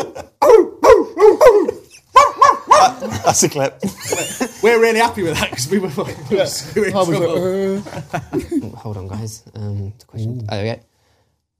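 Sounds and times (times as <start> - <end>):
laughter: 0.0 - 0.4, 2.7 - 8.9
speech: 0.2 - 0.7, 3.3 - 10.9
dog barking: 0.4 - 3.0.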